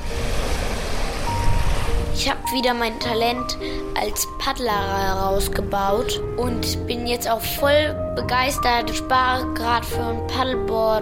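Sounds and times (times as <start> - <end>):
Baltic Sea surf breaking on the shore: 0.0 - 4.4
wind rumble: 0.0 - 7.4
speech: 2.2 - 10.9.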